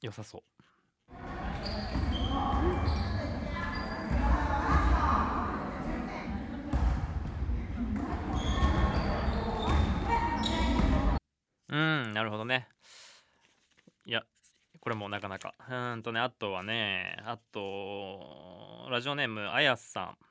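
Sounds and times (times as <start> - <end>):
speech: 0.0 - 2.1, 11.7 - 13.0, 14.1 - 20.2
basketball dribbled on a gym floor: 1.1 - 5.6, 6.3 - 11.2
voices in a gym: 1.1 - 11.2
squeaks on a gym floor: 1.2 - 5.1, 8.0 - 11.2.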